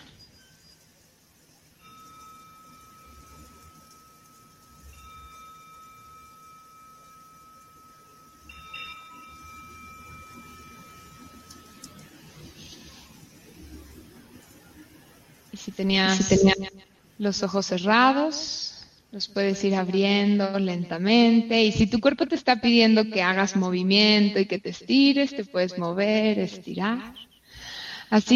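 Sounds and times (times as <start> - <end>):
faint hiss: 0.0 - 28.3
meditation bell struck during a mindfulness practice: 1.6 - 13.6
speech: 15.7 - 27.3, 28.1 - 28.3.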